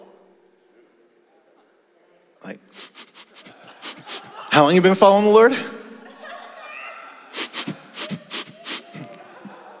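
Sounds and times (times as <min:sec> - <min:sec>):
speech: 0:02.4 - 0:02.9, 0:04.6 - 0:05.7
person imitating sniffing with sharp sniffs: 0:02.7 - 0:04.3, 0:07.3 - 0:09.2
laughter: 0:02.8 - 0:09.7.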